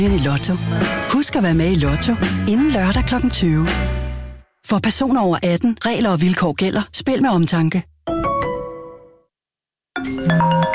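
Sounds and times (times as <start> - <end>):
speech: 0.0 - 4.0, 4.6 - 7.9
bright electronic phone ring: 10.0 - 10.7.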